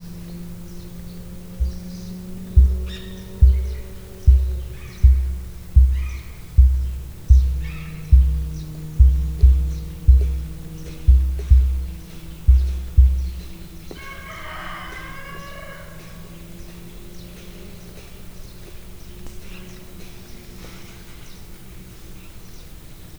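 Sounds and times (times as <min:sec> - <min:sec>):
distant car: 0:00.0 - 0:23.1
emu calling in Miskolc zoo: 0:01.6 - 0:16.3.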